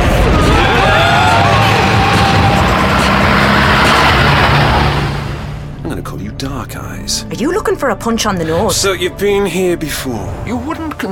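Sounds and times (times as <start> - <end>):
taxi cab engine revving as it accelerates: 0.0 - 5.8
dense road noise: 0.0 - 6.0
speech: 7.8 - 11.1.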